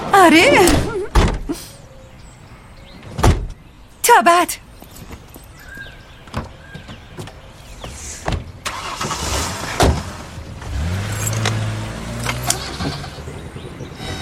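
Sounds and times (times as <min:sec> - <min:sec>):
speech: 0:00.2 - 0:00.9, 0:04.2 - 0:04.6
minivan sliding door rolling and thunking shut: 0:08.2 - 0:13.2
minivan engine starting and driving off: 0:08.6 - 0:14.2.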